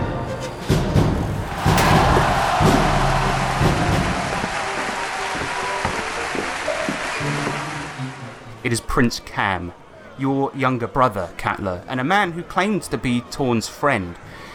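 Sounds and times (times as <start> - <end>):
loud dense applause from a large crowd: 1.3 - 8.6
faint crowd voices: 1.5 - 14.5
speech: 8.7 - 14.4.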